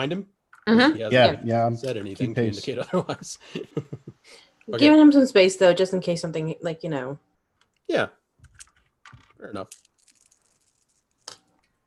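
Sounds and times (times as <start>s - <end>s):
speech: 0.0s - 7.3s, 7.9s - 8.2s, 9.4s - 9.8s
dice rolling across a surface: 8.4s - 11.7s.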